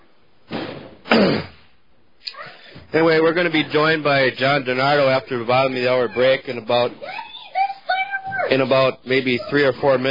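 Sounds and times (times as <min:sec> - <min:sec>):
firecrackers going off outside in the neighborhood: 0:00.4 - 0:01.6
speech: 0:02.9 - 0:07.2, 0:08.5 - 0:10.1.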